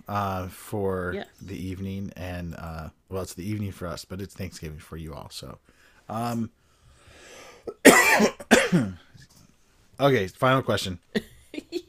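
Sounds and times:
speech: 0.1s - 6.6s, 7.6s - 9.3s, 10.0s - 11.7s
faint breathing: 5.6s - 7.7s
person with a persistent cough coughing raspily: 7.7s - 9.0s.

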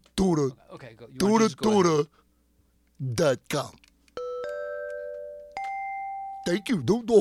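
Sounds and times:
speech: 0.2s - 2.2s, 3.0s - 3.8s, 6.4s - 7.1s
electronic keyboard bell chime notes: 4.2s - 6.8s.

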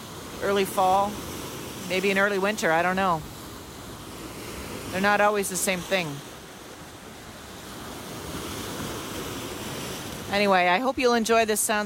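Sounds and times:
faint wind: 0.0s - 11.8s
surf waves breaking on a lake shore: 0.0s - 11.8s
speech: 0.4s - 1.3s, 1.9s - 3.3s, 4.9s - 6.3s, 10.3s - 11.8s.

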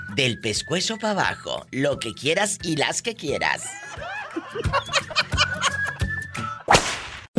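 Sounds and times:
speech: 0.2s - 5.2s
people laughing and snickering: 3.7s - 6.7s
belt or whip lashing in sharp cracks: 6.7s - 7.3s.

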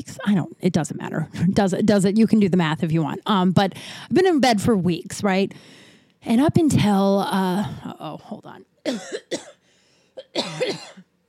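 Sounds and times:
speech: 0.0s - 9.6s, 10.2s - 11.1s
person in a raspy cough fit: 8.9s - 9.6s, 10.2s - 11.1s.

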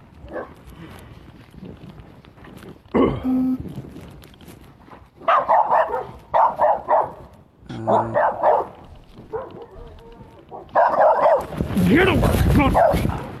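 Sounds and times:
rustling: 0.0s - 13.3s
dog barking to chase another dog away: 0.2s - 0.6s, 5.2s - 11.6s, 12.7s - 13.3s
speech: 3.0s - 3.7s, 7.8s - 8.4s, 11.9s - 13.2s
short dog yelp: 5.2s - 7.2s, 7.9s - 11.5s.

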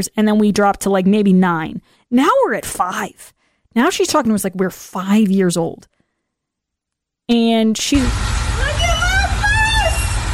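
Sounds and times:
speech: 0.0s - 6.0s, 7.3s - 8.4s
electric school bus motor whine: 8.0s - 10.3s.

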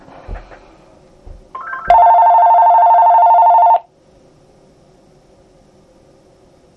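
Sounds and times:
electronic telephone ringing: 1.6s - 3.9s.

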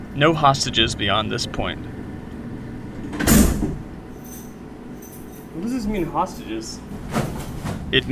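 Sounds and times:
low hum: 0.0s - 8.1s
speech: 0.2s - 1.9s, 5.6s - 7.2s, 7.9s - 8.1s
heavy metal sliding door rumbling along its track: 1.8s - 4.1s, 6.9s - 8.1s.

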